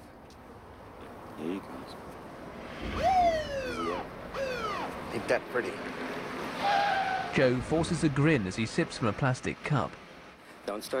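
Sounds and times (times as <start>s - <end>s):
low steady road rumble: 0.0s - 10.9s
speech: 1.4s - 10.0s, 10.6s - 10.9s
police car siren whoop: 2.8s - 5.0s.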